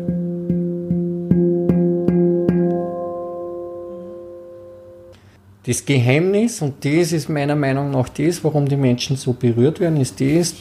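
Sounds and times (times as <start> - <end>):
handpan note struck with a finger: 0.0 - 5.2
speech: 5.7 - 10.5.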